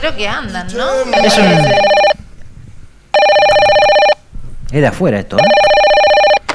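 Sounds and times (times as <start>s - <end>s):
speech: 0.0s - 2.0s, 4.7s - 5.6s
telephone ringing for an incoming call: 1.1s - 2.2s, 3.2s - 4.2s, 5.4s - 6.4s.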